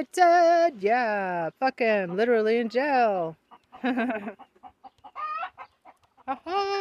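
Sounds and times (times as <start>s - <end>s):
speech: 0.0s - 4.5s, 6.3s - 6.7s
chicken clucking: 1.8s - 6.7s
chicken squawks: 3.5s - 6.7s.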